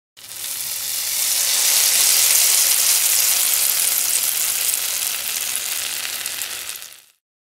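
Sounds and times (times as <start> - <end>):
sizzling: 0.2 - 7.2.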